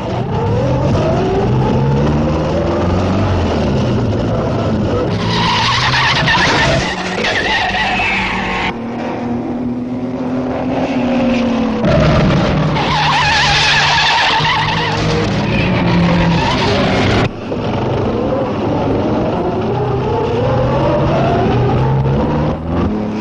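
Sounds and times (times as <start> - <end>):
tires squealing through newly tarred corners on a hot day: 0.0 - 9.2, 10.7 - 19.2
sports car engines roaring in a race: 0.0 - 23.1.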